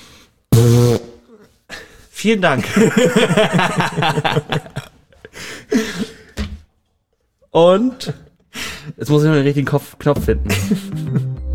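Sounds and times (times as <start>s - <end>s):
raspberry blown with the lips mimicking a fart: 0.5s - 1.4s
speech: 2.2s - 4.7s, 7.6s - 8.2s, 9.0s - 11.3s
laughter: 2.6s - 6.1s, 10.5s - 11.4s.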